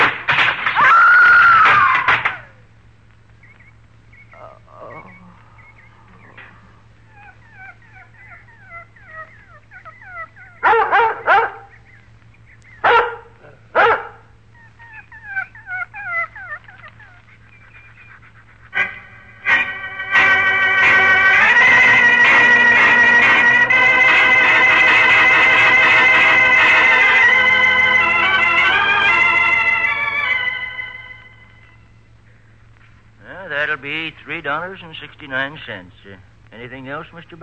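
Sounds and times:
steady low hum: 0:00.0 - 0:37.4
dog whining whimpers: 0:07.1 - 0:11.7
dog barking: 0:10.6 - 0:11.8, 0:12.8 - 0:14.3
speech: 0:34.5 - 0:37.4.

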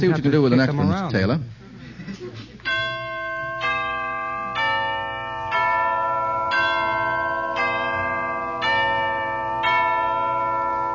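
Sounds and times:
speech: 0:00.0 - 0:02.2
deep resonant bells tolling: 0:02.7 - 0:10.9.

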